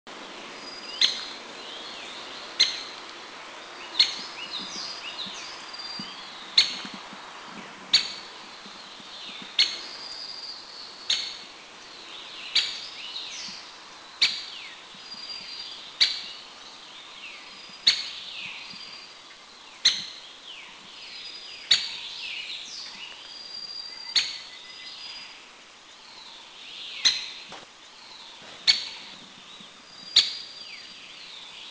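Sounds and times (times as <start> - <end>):
White-backed Woodpecker Dendrocopos leucotos insularis in Anmashan Taiwan: 1.0 - 1.4, 2.6 - 3.1, 4.0 - 7.1, 7.9 - 11.5, 12.4 - 16.4, 17.4 - 19.0, 19.8 - 21.0, 21.6 - 22.1, 23.9 - 24.7, 27.0 - 27.6, 28.3 - 30.9.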